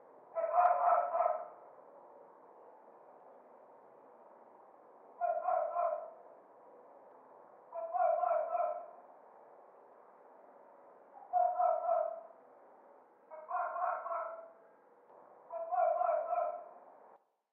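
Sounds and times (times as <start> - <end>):
small dogs: 0.4 - 1.6, 5.2 - 6.2, 7.7 - 9.0, 11.2 - 12.4, 13.3 - 14.6, 15.5 - 16.8.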